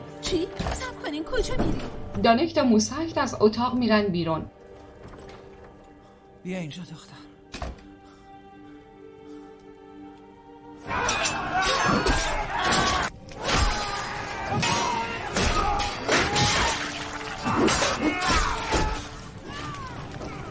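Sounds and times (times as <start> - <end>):
speech: 0.3 - 4.6, 6.4 - 7.3
gate being smashed and breaking apart: 11.0 - 20.4
splintering debris: 12.0 - 20.4.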